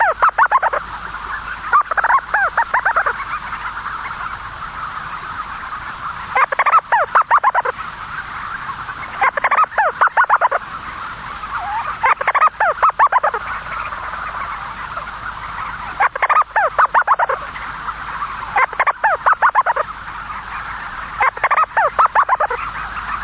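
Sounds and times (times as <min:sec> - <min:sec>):
storm petrel chattering: 0:00.0 - 0:00.8, 0:01.6 - 0:03.5, 0:06.3 - 0:07.8, 0:08.4 - 0:10.6, 0:11.4 - 0:23.2
steady hiss: 0:00.0 - 0:23.2.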